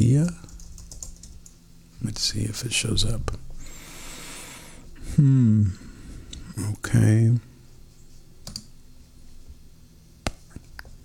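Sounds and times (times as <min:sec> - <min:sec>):
quiet hum: 0:00.0 - 0:11.0
speech: 0:00.1 - 0:00.4, 0:02.0 - 0:03.5, 0:05.2 - 0:05.8, 0:06.6 - 0:07.5
computer mouse or keyboard clicks: 0:00.5 - 0:01.6, 0:08.4 - 0:08.7.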